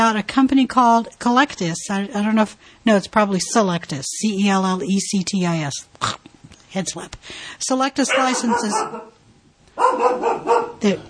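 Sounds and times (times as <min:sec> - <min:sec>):
speech: 0:00.0 - 0:09.1, 0:09.8 - 0:11.0
dog barking: 0:08.1 - 0:09.2, 0:09.8 - 0:10.9.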